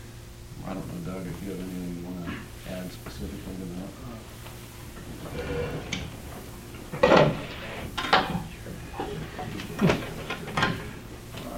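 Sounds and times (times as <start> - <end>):
quiet hum: 0.0 - 11.5
speech: 0.7 - 4.5, 5.1 - 6.2
chair being shifted into place, scraping and knocking: 4.9 - 11.4.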